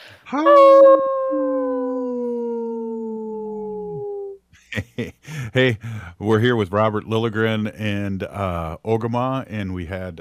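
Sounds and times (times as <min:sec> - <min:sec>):
speech: 0:00.3 - 0:01.8, 0:05.0 - 0:10.1
wolf howling: 0:00.4 - 0:04.4
laughter: 0:04.7 - 0:05.8.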